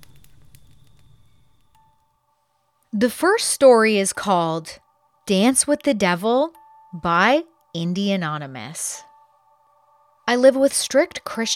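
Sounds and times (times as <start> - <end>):
campfire crackling: 0.0 - 2.0
speech: 3.0 - 9.1, 10.3 - 11.5.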